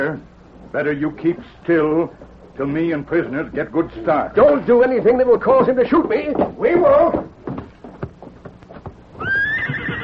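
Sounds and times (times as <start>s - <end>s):
speech: 0.0s - 7.3s
horse hooves clip-clopping: 0.6s - 10.0s
scuffling: 4.4s - 9.2s
horse whinnying: 9.2s - 10.0s.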